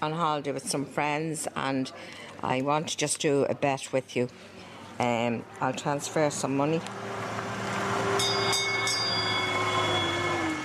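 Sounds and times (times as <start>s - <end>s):
speech: 0.0s - 7.2s
small tourist train rolling along its rails: 5.8s - 10.6s
high-pitched squealing from tourist train wheels: 6.2s - 10.6s.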